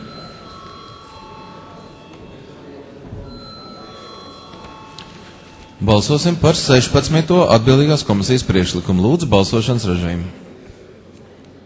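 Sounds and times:
parliament chamber electric bell ringing before a vote: 0:00.0 - 0:08.0
faint murmur in a parliament chamber: 0:00.0 - 0:11.6
speech: 0:05.8 - 0:10.4.

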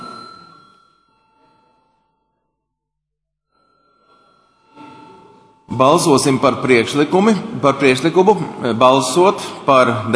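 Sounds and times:
parliament voting call electric bell ringing: 0:00.0 - 0:02.7, 0:03.5 - 0:06.6
speech: 0:05.8 - 0:10.1.

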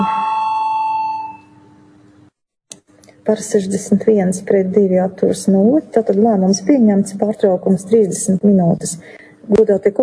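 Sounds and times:
electric bell ringing in a parliamentary chamber to call a vote: 0:00.0 - 0:01.8
speech: 0:03.2 - 0:10.0.

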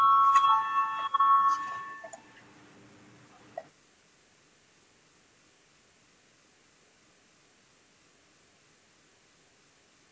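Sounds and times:
electronic parliamentary voting bell ringing: 0:00.0 - 0:02.4.

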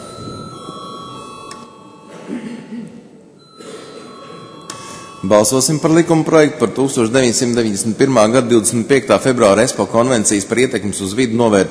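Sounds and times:
parliamentary division bell ringing to call a vote: 0:00.0 - 0:02.6, 0:03.4 - 0:06.8
speech: 0:05.2 - 0:11.7.

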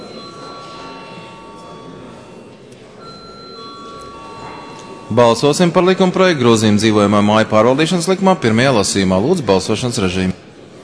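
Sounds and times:
parliament voting bell ringing with electric clang: 0:00.0 - 0:09.0
low murmur of a large hall: 0:00.0 - 0:10.8
speech: 0:05.1 - 0:10.3.

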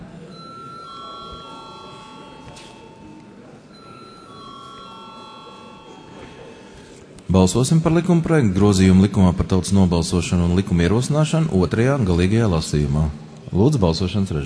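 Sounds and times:
murmuring and faint voices in a parliament chamber: 0:00.0 - 0:09.3
electronic bell ringing in a parliament chamber before a vote: 0:00.3 - 0:07.6
speech: 0:07.3 - 0:14.4.

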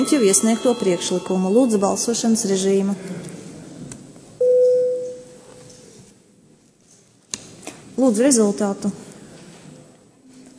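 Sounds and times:
electronic bell tone calling members of parliament to a vote: 0:00.0 - 0:02.9, 0:04.4 - 0:05.4
speech: 0:00.0 - 0:03.4, 0:08.1 - 0:09.1
faint noise: 0:00.0 - 0:10.5.

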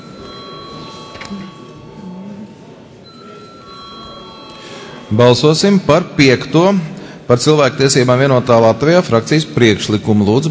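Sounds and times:
steady electric bell ringing before a vote in a parliament chamber: 0:00.0 - 0:06.0
low murmur in a parliament chamber: 0:00.0 - 0:10.4
speech: 0:01.3 - 0:01.6, 0:05.1 - 0:10.4.

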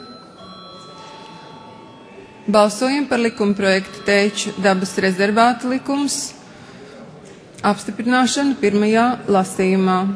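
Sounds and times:
electric bell ringing in a parliament chamber to summon members to vote: 0:00.0 - 0:06.3
speech: 0:02.5 - 0:06.4, 0:07.6 - 0:10.1.

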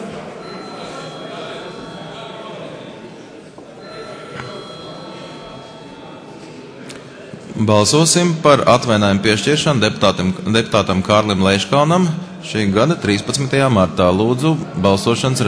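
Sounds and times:
electric bell rung in a parliament chamber: 0:00.4 - 0:02.8, 0:03.8 - 0:06.8
speech: 0:07.6 - 0:15.4.

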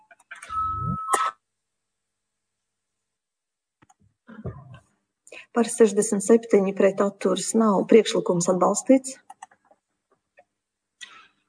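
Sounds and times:
electronic chime bell rung before a parliamentary vote: 0:00.4 - 0:01.2
speech: 0:05.5 - 0:09.3.

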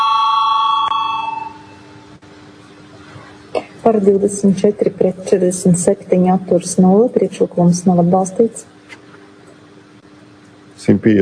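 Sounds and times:
bell ringing in a parliament chamber to call a vote: 0:00.0 - 0:01.8
speech: 0:03.9 - 0:08.8, 0:10.9 - 0:11.1.

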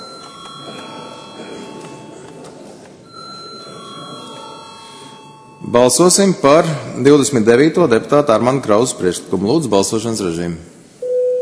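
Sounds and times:
electric bell ringing in a parliament chamber to call a vote: 0:00.0 - 0:06.4
speech: 0:05.7 - 0:10.8.

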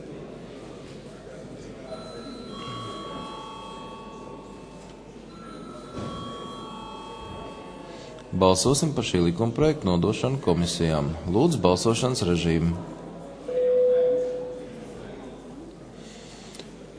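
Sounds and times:
murmur of many people: 0:00.0 - 0:16.9
parliament bell summoning members to vote: 0:01.9 - 0:09.2
speech: 0:08.4 - 0:12.9.

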